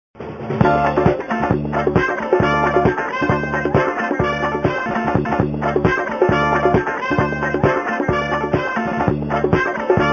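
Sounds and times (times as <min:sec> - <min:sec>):
disco groove ringtone: 0:00.6 - 0:10.1.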